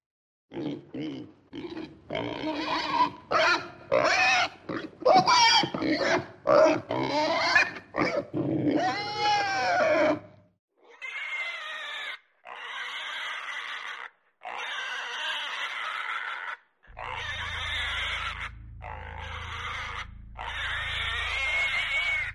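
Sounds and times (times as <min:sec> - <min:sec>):
pigs grunting and oinking: 0:00.5 - 0:22.3
low rumble: 0:16.9 - 0:22.3.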